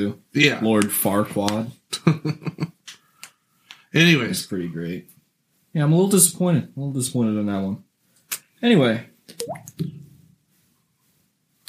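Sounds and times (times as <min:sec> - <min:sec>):
speech: 0:00.0 - 0:02.7, 0:03.9 - 0:05.1, 0:05.8 - 0:07.8, 0:08.6 - 0:10.0
liquid dripping: 0:09.3 - 0:09.9.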